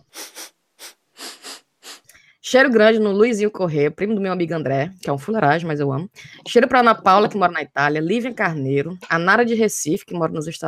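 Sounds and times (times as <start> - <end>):
loud sniffs: 0.0 - 2.2
speech: 2.5 - 10.6.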